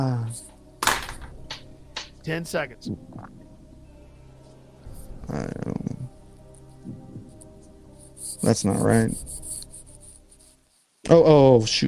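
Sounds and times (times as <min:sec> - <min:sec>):
speech: 0:00.0 - 0:00.5, 0:02.2 - 0:03.4, 0:05.3 - 0:05.8, 0:08.4 - 0:09.4, 0:11.1 - 0:11.8
pencil scratching across paper in short strokes: 0:06.6 - 0:10.9.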